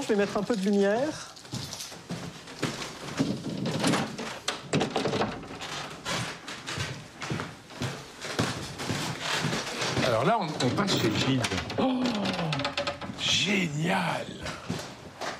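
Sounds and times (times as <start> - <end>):
speech: 0.0 - 1.6, 10.1 - 12.5, 13.4 - 14.5
dull thumps, knocks and scraping handling noises: 2.6 - 7.0, 8.4 - 13.5
very narrow office door being opened: 3.1 - 6.5, 9.3 - 13.7.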